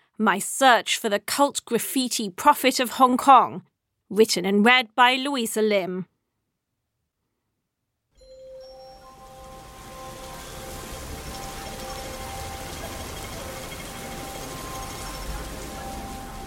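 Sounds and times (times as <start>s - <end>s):
speech: 0.2s - 6.1s
bright chime: 8.2s - 16.4s
steady rain pouring down: 8.5s - 16.4s.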